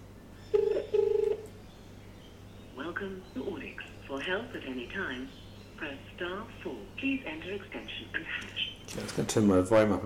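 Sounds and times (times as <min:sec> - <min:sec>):
faint low hum: 0:00.0 - 0:10.0
iPhone outgoing call ringback tone: 0:00.5 - 0:01.5
speech: 0:03.0 - 0:10.0.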